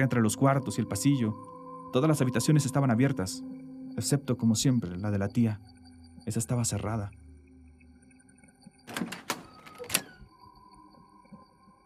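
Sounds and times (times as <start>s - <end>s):
speech: 0.0s - 7.3s
door latch clicks: 8.9s - 10.3s
door opening: 8.9s - 10.3s.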